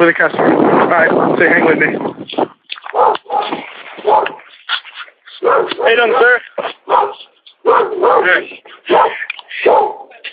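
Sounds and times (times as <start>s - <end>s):
speech: 0.0s - 2.5s, 5.5s - 7.1s, 7.7s - 10.0s
dog barking loudly in an agitated series: 2.9s - 4.4s, 5.4s - 6.3s, 6.9s - 10.2s.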